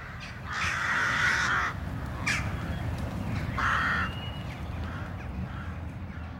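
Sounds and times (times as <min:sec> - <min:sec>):
crows cawing harshly at a rookery: 0:00.0 - 0:02.7, 0:03.4 - 0:06.3.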